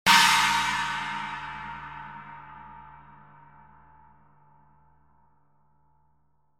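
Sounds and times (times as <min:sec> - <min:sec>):
19-inch China cymbal: 0:00.1 - 0:04.3.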